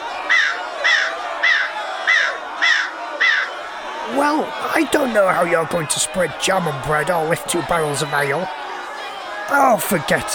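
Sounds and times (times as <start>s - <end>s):
bird cawing harshly: 0.3s - 3.6s
speech: 4.1s - 8.6s, 9.5s - 10.3s.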